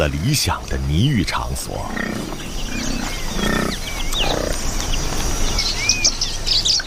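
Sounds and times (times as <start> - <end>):
speech: 0.0 - 3.5
Nyasa lovebirds chirping and twittering: 0.0 - 6.8
busy outdoor noise: 0.0 - 6.8
low animal grunts: 1.7 - 4.7.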